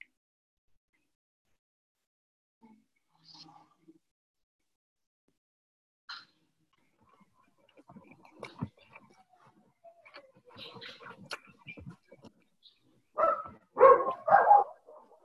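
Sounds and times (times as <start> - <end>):
small dog barking: 13.2 - 15.2.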